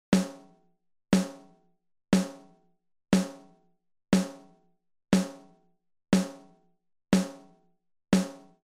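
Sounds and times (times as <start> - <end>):
snare drum: 0.2 - 0.6, 1.2 - 1.6, 2.2 - 2.6, 3.2 - 3.6, 4.2 - 4.6, 5.2 - 5.6, 6.2 - 6.6, 7.2 - 7.6, 8.2 - 8.6.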